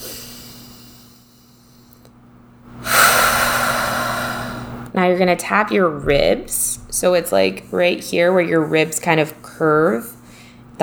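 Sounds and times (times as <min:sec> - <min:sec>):
deep airy breath during a guided emotional tapping exercise: 0:00.0 - 0:02.1, 0:02.8 - 0:04.9, 0:10.2 - 0:10.7
speech: 0:05.0 - 0:10.2.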